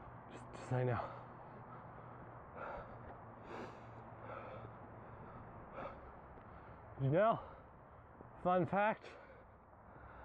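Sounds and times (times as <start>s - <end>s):
speech: 0.3s - 1.2s, 7.0s - 7.5s, 8.4s - 9.2s
breathing: 1.0s - 7.8s, 9.0s - 10.2s.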